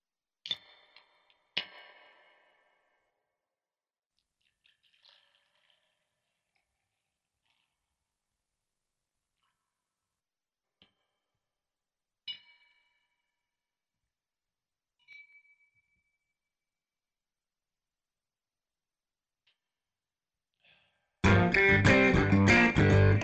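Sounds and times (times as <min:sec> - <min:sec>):
bass: 0:21.2 - 0:23.2
guitar: 0:21.2 - 0:23.2.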